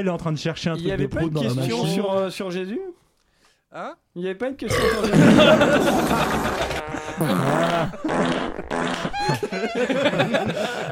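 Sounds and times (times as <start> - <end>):
speech: 0.0 - 3.0, 3.7 - 6.6, 7.2 - 10.9
laughter: 5.0 - 10.9
fart: 5.2 - 9.4.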